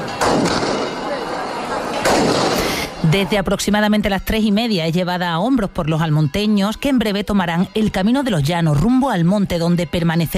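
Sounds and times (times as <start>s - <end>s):
shotgun salvos fired during a religious procession: 0.0s - 3.0s
crowd din in village streets during a religious procession: 0.0s - 8.1s
speech: 3.0s - 10.3s.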